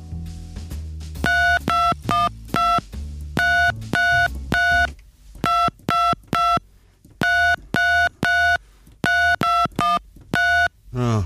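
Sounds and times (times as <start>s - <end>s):
simple melody tapped out on telephone keypad tones: 1.3s - 2.8s, 3.4s - 6.6s, 7.2s - 10.7s.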